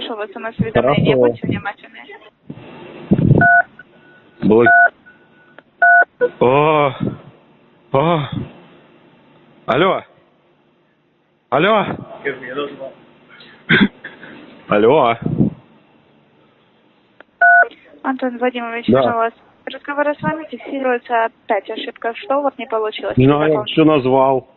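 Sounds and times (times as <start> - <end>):
speech: 0.1 - 2.2, 4.4 - 4.9, 6.4 - 7.1, 7.9 - 8.6, 9.7 - 10.1, 11.5 - 13.0, 13.7 - 14.0, 14.7 - 15.4, 18.0 - 24.5
short beep tones on a phone line: 3.4 - 6.4, 17.4 - 17.7.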